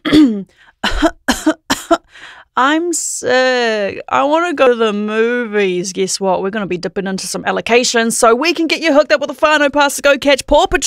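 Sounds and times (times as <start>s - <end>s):
person coughing with chesty hacks: 0.0s - 2.1s
speech: 0.1s - 1.2s, 2.6s - 10.8s.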